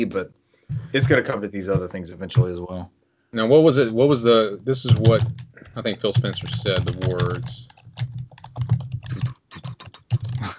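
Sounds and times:
speech: 0:00.0 - 0:08.1
rapid typing on a computer keyboard: 0:04.9 - 0:10.5.

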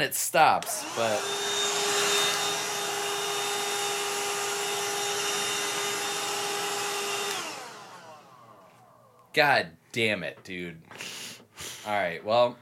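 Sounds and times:
speech: 0:00.0 - 0:01.5, 0:09.3 - 0:12.6
small handheld vacuum whirring with high motor whine: 0:00.6 - 0:09.3.

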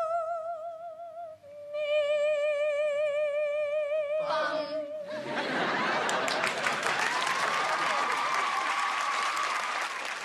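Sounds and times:
singer holding a vibrato note with harmonics: 0:00.1 - 0:05.1
audience laughing: 0:05.1 - 0:08.2
audience applauding: 0:05.7 - 0:10.2.

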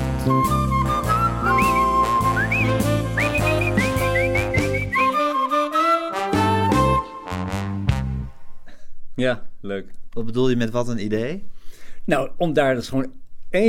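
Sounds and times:
full band with bass and drums: 0:00.0 - 0:05.1
bright whistled melody: 0:00.0 - 0:07.7
speech: 0:00.2 - 0:00.7, 0:09.2 - 0:11.5, 0:12.1 - 0:13.6.

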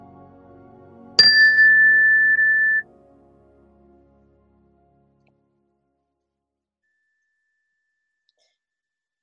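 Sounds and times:
meditation chime ringing: 0:01.2 - 0:02.8.

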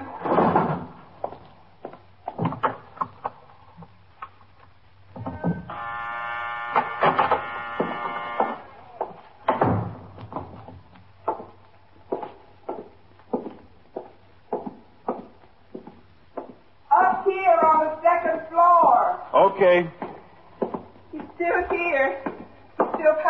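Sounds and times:
footsteps: 0:00.4 - 0:03.9, 0:07.2 - 0:18.7, 0:19.8 - 0:23.2
door buzzer pressed to unlock downstairs door: 0:05.3 - 0:09.2.

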